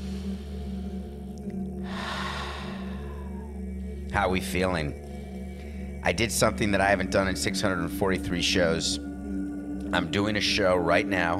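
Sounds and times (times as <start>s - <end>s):
deep breath in through the nose and out through the mouth: 0.0s - 4.2s, 5.0s - 6.0s
steady low hum: 0.0s - 11.3s
speech: 4.2s - 5.0s, 6.0s - 9.1s, 9.9s - 11.3s.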